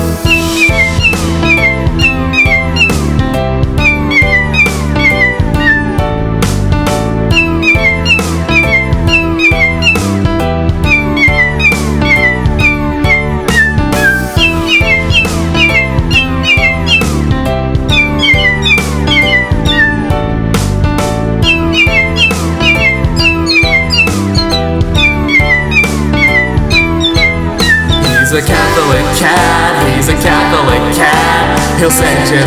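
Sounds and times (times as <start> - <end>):
loud dense musical backing: 0.0 - 32.4
cats meowing as if singing: 0.3 - 3.1, 3.8 - 6.0, 7.3 - 10.2, 10.8 - 17.2, 17.9 - 20.2, 21.4 - 28.4.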